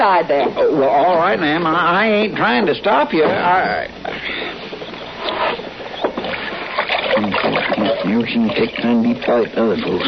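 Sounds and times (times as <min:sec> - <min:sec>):
speech: 0:00.1 - 0:04.3, 0:07.2 - 0:10.0
small splashy bursts of water: 0:06.2 - 0:09.6.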